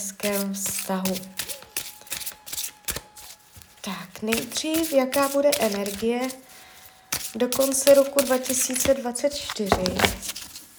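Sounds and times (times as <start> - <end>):
speech: 0.0 - 1.5, 3.8 - 6.5, 7.3 - 10.4
playing cards being shuffled for a card reading: 0.0 - 10.7.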